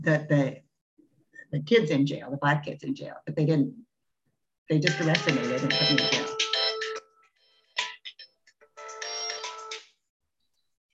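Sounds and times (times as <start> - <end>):
speech: 0.0 - 0.6, 1.5 - 3.8, 4.7 - 6.4
mobile phone ringtone playing a bright tonal melody: 4.9 - 7.1, 8.8 - 9.8.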